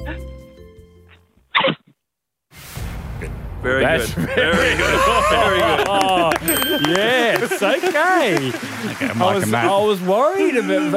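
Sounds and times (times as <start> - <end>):
person mimicking a bride stifling a sneeze: 1.6 - 1.9
speech: 3.6 - 10.9
laughter: 3.7 - 10.9.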